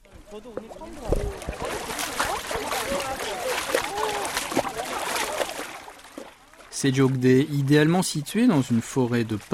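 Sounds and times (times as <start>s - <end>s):
feet splashing in cold water: 0.0s - 9.5s
speech: 0.3s - 1.9s, 6.8s - 9.5s.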